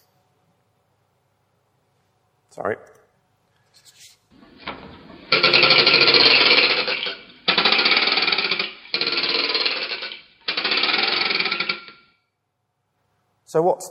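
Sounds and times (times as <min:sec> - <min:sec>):
speech: 0:02.6 - 0:03.0, 0:13.5 - 0:13.8
plastic toy clacker scraping over wooden dowels: 0:05.3 - 0:12.1.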